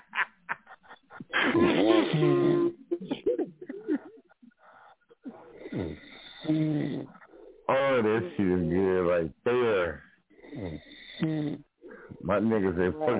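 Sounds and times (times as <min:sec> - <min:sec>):
brief laughing sounds: 0:00.0 - 0:06.2, 0:07.0 - 0:09.0, 0:12.0 - 0:13.1
speech: 0:01.6 - 0:02.4, 0:08.4 - 0:09.4, 0:12.4 - 0:13.1
man vocally imitating snoring with rasping breaths and snorts: 0:05.5 - 0:07.3, 0:10.4 - 0:12.2.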